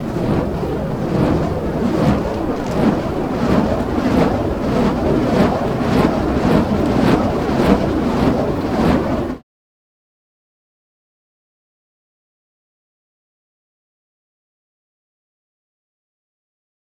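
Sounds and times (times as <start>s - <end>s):
fire staff burning and whooshing: 0.0s - 9.4s.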